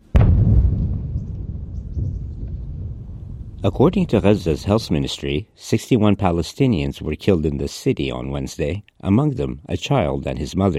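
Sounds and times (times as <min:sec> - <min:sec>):
massive explosion boom in Gaza: 0:00.0 - 0:05.0
speech: 0:03.6 - 0:10.7.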